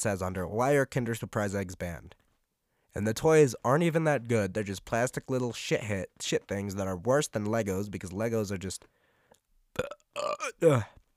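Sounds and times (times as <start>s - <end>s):
speech: 0.0s - 2.2s, 2.9s - 9.0s, 9.8s - 11.0s
voiced gurgling burp: 9.8s - 11.0s.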